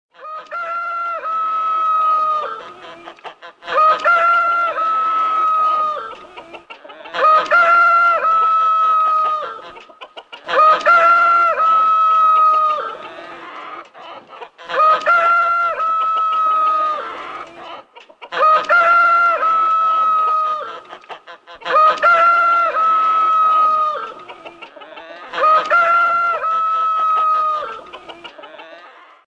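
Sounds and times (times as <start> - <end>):
rooster crowing in the morning: 0.2 - 2.7, 3.7 - 6.2, 7.1 - 9.7, 10.5 - 13.8, 14.7 - 17.7, 18.4 - 20.8, 21.7 - 24.2, 25.1 - 29.2.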